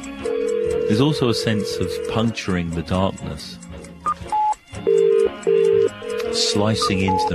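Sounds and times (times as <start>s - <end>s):
telephone ringing tone calling a phone box at night: 0.2s - 2.2s, 4.3s - 7.3s
speech: 0.9s - 3.6s, 6.4s - 7.3s
telephone beeps on a line calling a phone box: 4.0s - 7.3s.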